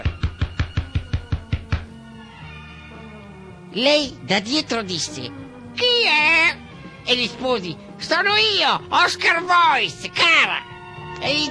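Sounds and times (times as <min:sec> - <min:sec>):
knocking on a door: 0:00.0 - 0:02.0
speech: 0:03.7 - 0:11.4.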